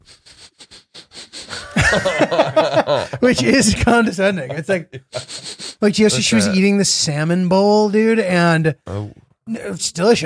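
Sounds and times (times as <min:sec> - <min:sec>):
person imitating disapproving sniffing at a bad smell: 0:00.0 - 0:01.8, 0:05.0 - 0:05.8
slightly harsher wheezy inhale: 0:00.0 - 0:01.8, 0:05.1 - 0:05.8
laughter: 0:01.5 - 0:06.6
speech: 0:01.9 - 0:05.2, 0:05.8 - 0:10.2.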